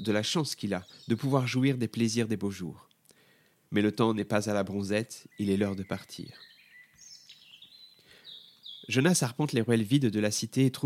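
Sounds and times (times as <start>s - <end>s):
birds chirping and singing: 0.0s - 2.1s, 4.6s - 9.3s
speech: 0.0s - 2.9s, 3.7s - 6.5s, 8.9s - 10.8s.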